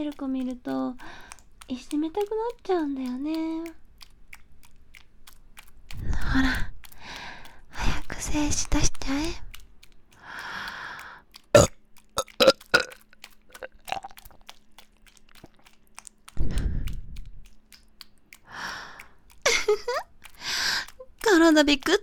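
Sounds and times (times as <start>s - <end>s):
speech: 0.0s - 3.8s, 6.2s - 6.7s, 8.2s - 9.5s, 21.6s - 22.0s
wet mouth clicks: 0.0s - 22.0s
deep burp: 11.6s - 11.8s.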